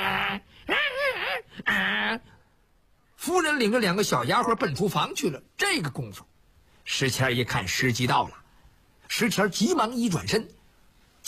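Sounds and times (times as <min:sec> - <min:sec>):
voice imitating a dog whimpering: 0:00.0 - 0:02.2
speech: 0:03.3 - 0:06.3, 0:06.9 - 0:08.4, 0:09.1 - 0:10.6.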